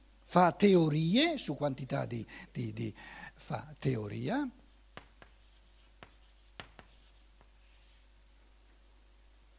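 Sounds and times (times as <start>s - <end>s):
faint hum: 0.0s - 9.5s
speech: 0.3s - 4.6s
red marker squeaking and tapping on a board: 4.7s - 8.1s.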